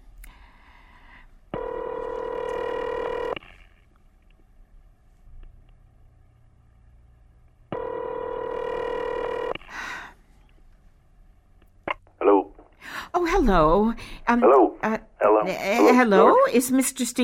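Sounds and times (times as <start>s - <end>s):
telephone ringing tone buzzing through the line: 1.6s - 3.6s, 7.7s - 9.6s
speech: 13.4s - 17.2s.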